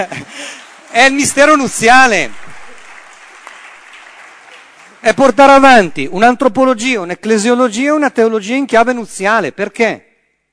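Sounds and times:
laughter: 0:00.0 - 0:00.9
speech: 0:00.0 - 0:02.4, 0:05.0 - 0:10.1
audience applause: 0:00.0 - 0:05.6.

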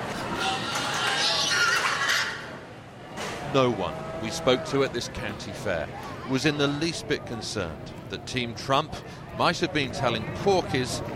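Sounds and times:
noise: 0:00.0 - 0:11.1
agitated pigs squealing in livestock sheds at a county fair: 0:00.2 - 0:02.6
speech: 0:03.5 - 0:11.1.

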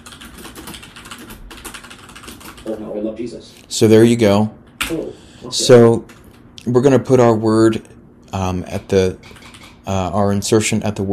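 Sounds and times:
typing on a computer keyboard entering text into a word-processor document: 0:00.0 - 0:02.7, 0:09.2 - 0:09.8
speech: 0:02.6 - 0:11.1.

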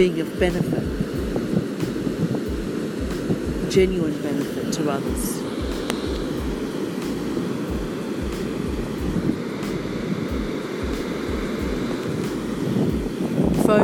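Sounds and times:
speech: 0:00.0 - 0:01.0, 0:03.7 - 0:05.4
gusty wind buffeting the microphone: 0:00.0 - 0:13.8
ocean waves breaking at the beach: 0:00.0 - 0:13.8.

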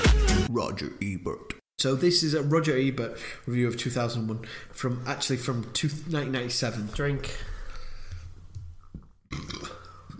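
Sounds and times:
speech: 0:00.6 - 0:07.5, 0:09.3 - 0:09.8
loud drawn-out gurgling burp: 0:09.3 - 0:10.1.

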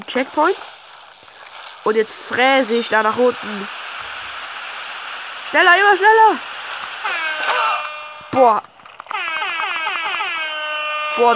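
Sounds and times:
speech: 0:00.1 - 0:00.8, 0:01.8 - 0:03.8, 0:05.5 - 0:07.2, 0:08.4 - 0:08.7, 0:11.2 - 0:11.3
video game horn honking: 0:07.1 - 0:08.4, 0:09.2 - 0:11.3.

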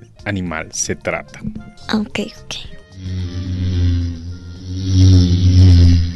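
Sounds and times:
speech: 0:00.2 - 0:03.2
bumblebee buzzing: 0:02.9 - 0:06.1.

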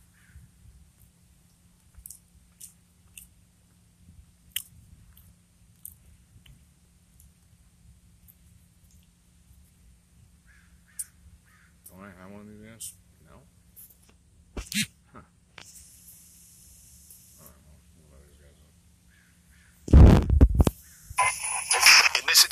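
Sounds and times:
steady low hum: 0:00.0 - 0:22.4
person chewing and biting pizza: 0:02.0 - 0:03.3
speech: 0:12.8 - 0:13.0.

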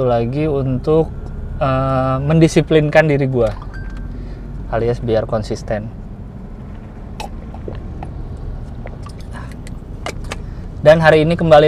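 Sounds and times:
speech: 0:00.0 - 0:03.7, 0:04.7 - 0:06.0, 0:10.8 - 0:11.6
road rumble from inside a car on a long drive: 0:00.0 - 0:11.6
small clicks and clinks inside a car: 0:03.4 - 0:04.1, 0:08.8 - 0:10.5.

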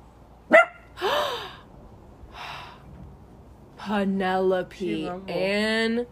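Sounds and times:
female dog lying down barking and yelping: 0:00.5 - 0:01.0
speech: 0:03.9 - 0:06.1.

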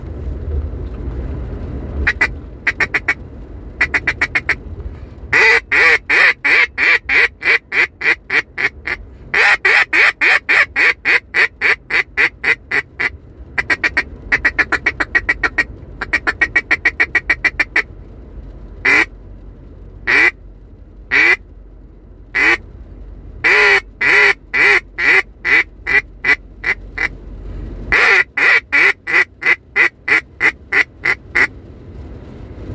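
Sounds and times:
double-reed duck call blown in hen quack sequences: 0:02.0 - 0:03.2, 0:03.8 - 0:04.6, 0:05.3 - 0:17.9, 0:18.8 - 0:19.1, 0:20.1 - 0:20.4, 0:21.1 - 0:21.4, 0:22.4 - 0:22.6, 0:23.4 - 0:27.1, 0:27.9 - 0:31.5.

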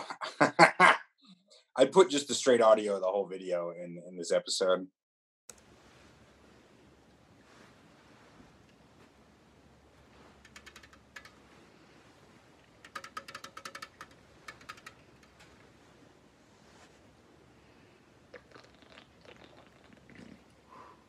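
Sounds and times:
speech: 0:01.9 - 0:05.0
soft hiss: 0:05.5 - 0:12.8, 0:14.2 - 0:21.0
fingernails tapping: 0:10.4 - 0:11.4, 0:12.8 - 0:15.5.

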